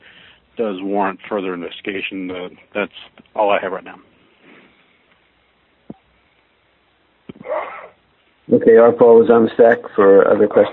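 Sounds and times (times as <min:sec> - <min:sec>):
speech: 0:00.6 - 0:04.1, 0:08.5 - 0:10.7
person sneezing during a meeting: 0:07.3 - 0:08.0.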